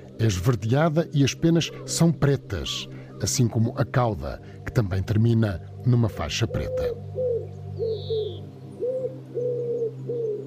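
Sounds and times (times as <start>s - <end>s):
speech: 0.2s - 7.2s
wood pigeon cooing: 6.1s - 10.4s.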